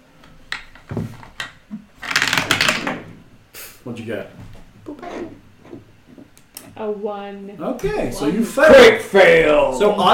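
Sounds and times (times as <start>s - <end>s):
wooden eight-sided die tumbling through a dice tower: 0.6s - 3.1s
speech: 0.9s - 1.2s, 3.8s - 5.4s, 6.8s - 10.1s.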